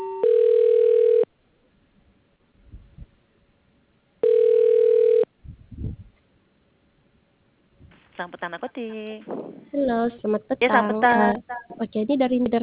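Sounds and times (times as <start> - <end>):
buzzing telephone line tones while a call is being transferred: 0.0 - 1.3, 4.2 - 5.3
faint low thuds: 5.4 - 6.2, 9.2 - 10.2
speech: 8.2 - 12.6.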